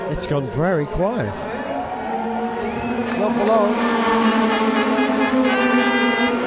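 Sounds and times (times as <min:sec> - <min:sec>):
speech: 0:00.2 - 0:01.5, 0:03.2 - 0:05.9
Ferrari and LMP2 racing cars roaring past a trackside fence at high speed: 0:01.3 - 0:06.4.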